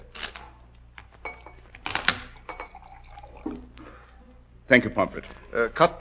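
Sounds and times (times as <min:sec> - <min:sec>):
glassware clinking: 0:01.2 - 0:03.7
drink pouring into a glass: 0:02.2 - 0:04.0
speech: 0:04.7 - 0:06.0.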